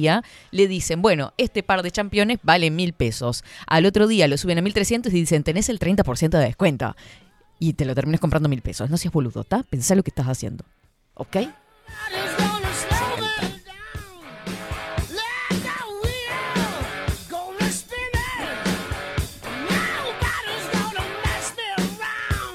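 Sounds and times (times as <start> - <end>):
speech: 0.0 - 13.5
man yelling into a microphone: 11.4 - 14.4, 15.0 - 22.5.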